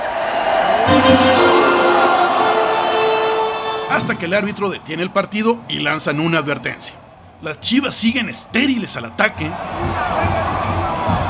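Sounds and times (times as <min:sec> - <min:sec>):
stadium crowd shouting and roaring at goalkeeper: 0:00.0 - 0:06.8, 0:07.7 - 0:11.2
brief tonal blare from stadium loudspeakers: 0:00.9 - 0:05.9
speech: 0:04.2 - 0:11.2.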